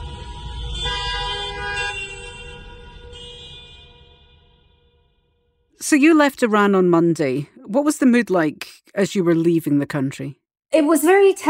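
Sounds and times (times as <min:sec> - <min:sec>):
low traffic rumble: 0:00.0 - 0:03.5
car horns honking in protest: 0:00.0 - 0:05.5
speech: 0:05.9 - 0:11.4.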